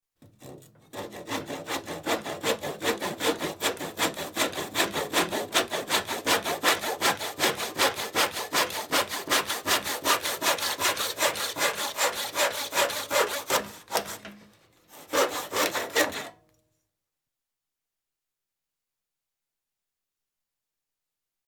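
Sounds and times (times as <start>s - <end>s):
tenon saw cutting a small piece of wood: 0.3s - 16.4s.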